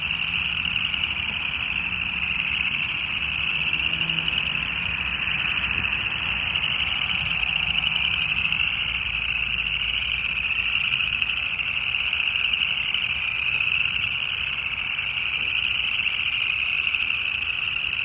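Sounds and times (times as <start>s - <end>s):
chorus of many frogs trilling and croaking at a small farm pond on a cloudy spring evening: 0.0s - 18.0s.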